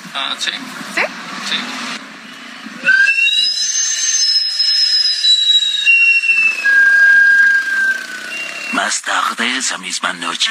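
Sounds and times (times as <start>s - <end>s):
speech: 0.2s - 2.0s, 9.4s - 10.4s
sweet potato vendor cart's steam whistle shrieking: 2.8s - 8.9s.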